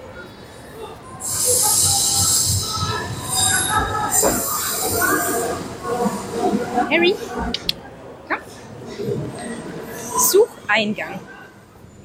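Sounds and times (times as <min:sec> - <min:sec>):
rumble of moving city rail train cars: 0:00.0 - 0:12.0
city rail train wheels squealing as it pulls into a stop: 0:01.2 - 0:05.6, 0:09.4 - 0:10.6
speech: 0:06.9 - 0:07.8, 0:10.7 - 0:11.3.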